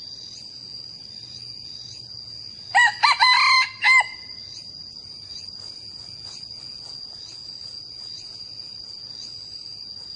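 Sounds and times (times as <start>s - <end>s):
young male red junglefowl crowing: 2.7s - 4.4s.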